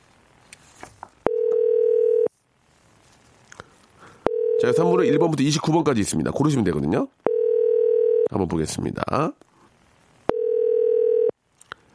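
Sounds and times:
electronic telephone ringback tone: 1.3 - 2.3, 4.3 - 5.3, 7.3 - 8.3, 10.3 - 11.3
speech: 4.7 - 7.2, 8.3 - 9.5.

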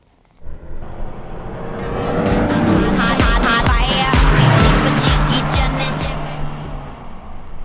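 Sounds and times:
neighbouring car speeding past on the road: 0.4 - 7.6
loud bass-heavy music blaring from a car: 1.8 - 6.6.

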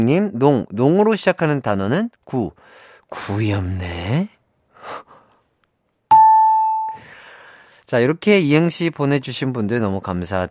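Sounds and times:
speech: 0.0 - 5.1, 7.9 - 10.4
ding-dong-dang correct-answer bell chime: 6.1 - 7.0.

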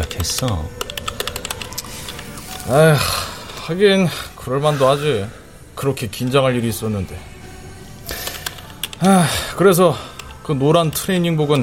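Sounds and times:
typing on a computer keyboard in a coffee shop smoking room: 0.0 - 2.6, 8.1 - 9.1
low hum: 0.0 - 11.6
speech: 0.2 - 0.9, 2.6 - 7.3, 9.0 - 11.6.

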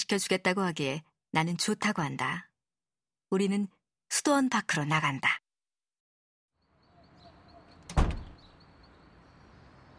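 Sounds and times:
speech: 0.1 - 2.5, 3.3 - 5.4
heavy wooden door thudding shut: 7.8 - 8.5.

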